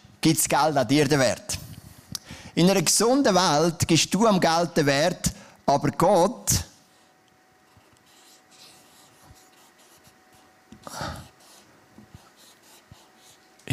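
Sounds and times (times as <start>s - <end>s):
speech: 0.2s - 1.6s, 2.6s - 6.6s
pen scratching and tapping on a surface: 7.7s - 10.5s, 11.2s - 13.4s.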